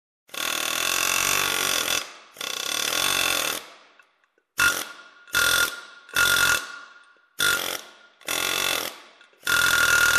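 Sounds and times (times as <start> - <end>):
groove cutter cutting aluminum: 0.3 - 3.7, 4.6 - 10.1.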